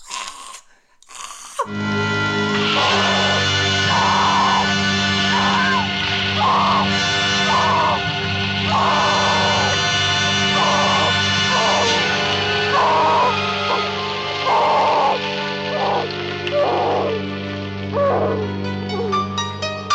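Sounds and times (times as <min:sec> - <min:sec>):
loud steady droning background: 0:01.7 - 0:18.7
woman screaming while being smothered: 0:02.6 - 0:08.1, 0:08.7 - 0:17.2.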